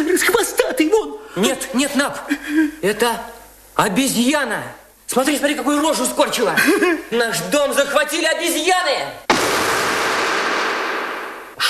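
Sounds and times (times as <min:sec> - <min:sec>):
speech: 0:00.0 - 0:00.6, 0:01.4 - 0:09.3
gunshot fired at monkeys: 0:09.3 - 0:11.6.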